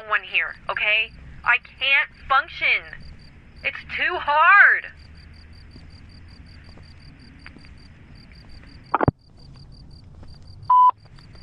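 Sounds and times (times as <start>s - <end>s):
speech: 0.4s - 3.0s, 3.6s - 5.0s
faint rapid high-pitched pulsing: 0.5s - 9.1s
phone button beeps when dialing: 10.7s - 11.0s.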